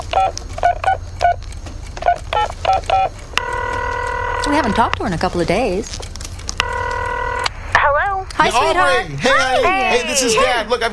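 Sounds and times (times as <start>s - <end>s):
touch-tone keypad beeps dialing a phone number: 0.0s - 1.4s, 2.0s - 5.0s, 6.6s - 7.5s
speech: 0.2s - 0.5s, 4.5s - 6.1s, 8.4s - 10.9s
phone ringing tone: 2.0s - 5.0s, 6.6s - 8.0s.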